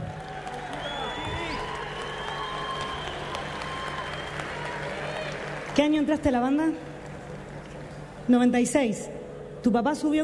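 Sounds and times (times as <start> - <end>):
large crowd clapping and cheering for a bombo drummer: 0.0 - 8.3
scattered shouts and high whistles: 0.6 - 5.4
speech: 5.8 - 6.9, 8.3 - 10.2.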